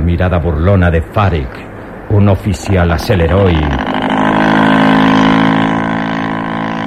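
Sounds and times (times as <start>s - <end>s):
speech: 0.2s - 4.0s
motorboat engine droning and pulling away: 1.1s - 6.8s.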